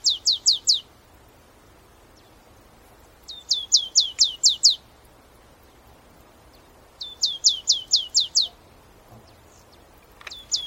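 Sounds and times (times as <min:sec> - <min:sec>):
Marsh tit Poecile palustris calling: 0:00.0 - 0:00.9, 0:03.2 - 0:04.8, 0:06.5 - 0:10.6
faint background hiss: 0:00.0 - 0:10.6.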